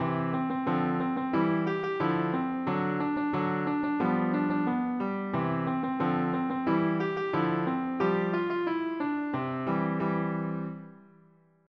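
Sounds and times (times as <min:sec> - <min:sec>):
piano at fast tempo: 0:00.0 - 0:11.3.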